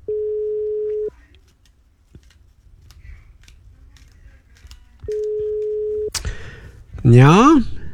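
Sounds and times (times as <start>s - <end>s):
steady electronic ringback tone of an outgoing phone call: 0.0s - 1.1s, 5.1s - 6.1s
faint clicks on a phone line: 0.9s - 6.4s
speech: 7.0s - 7.7s.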